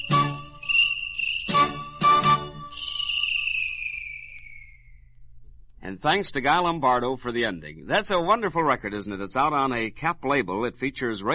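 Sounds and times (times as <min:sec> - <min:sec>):
thin high cricket-like chirping trill: 0:00.0 - 0:05.1
speech: 0:05.9 - 0:11.3.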